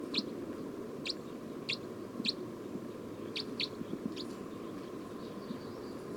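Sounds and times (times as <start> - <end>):
bird calls as short high thin chirps: 0.1 - 0.3, 1.1 - 2.4, 3.2 - 6.1.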